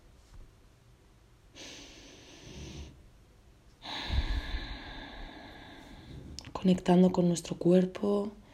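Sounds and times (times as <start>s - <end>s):
deep breaths in and out: 1.5s - 3.0s, 3.8s - 6.5s
speech: 6.6s - 8.4s.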